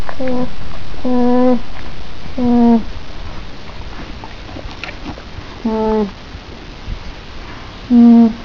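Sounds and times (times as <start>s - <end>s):
alpaca humming: 2.3s - 8.4s.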